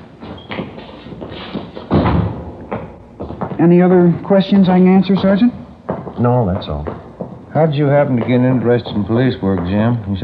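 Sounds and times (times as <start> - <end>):
door thudding shut: 1.9 - 2.5
speech: 3.6 - 5.6, 6.2 - 7.0, 7.6 - 10.2.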